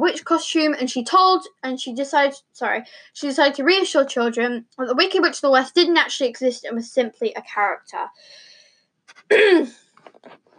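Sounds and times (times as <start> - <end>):
speech: 0.0 - 8.5, 9.2 - 10.5
breathing: 2.8 - 3.2, 8.2 - 8.9
harsh raspy throat clearing: 9.1 - 9.7.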